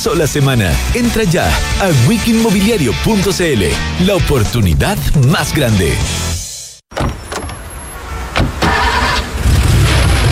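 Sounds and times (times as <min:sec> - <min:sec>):
speech: 0:00.0 - 0:06.3
rental car engine cranking and starting: 0:07.7 - 0:10.3.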